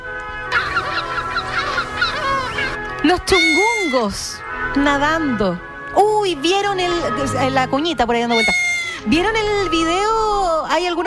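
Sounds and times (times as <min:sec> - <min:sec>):
seagulls calling while flying over the coast at sunset: 0:00.3 - 0:05.5, 0:06.5 - 0:10.0
speech: 0:03.1 - 0:11.0.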